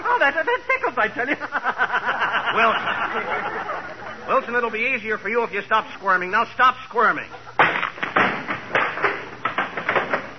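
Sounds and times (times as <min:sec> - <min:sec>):
laughter: 0:00.1 - 0:04.8, 0:07.2 - 0:07.7
speech: 0:00.2 - 0:07.5
wooden chair breaking apart: 0:07.6 - 0:10.3.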